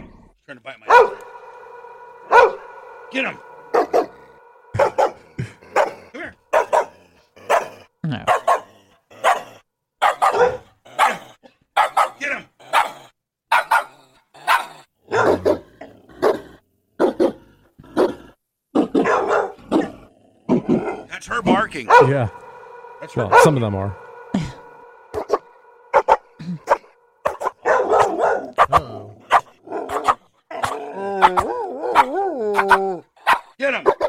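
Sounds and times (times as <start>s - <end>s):
speech: 0.5s - 1.3s, 3.1s - 3.5s, 8.1s - 8.4s, 21.2s - 22.4s, 23.0s - 24.5s
dog barking chopped and repeated like a remix: 0.9s - 1.6s, 2.2s - 2.8s, 4.8s - 21.1s, 21.9s - 24.2s, 25.0s - 34.0s.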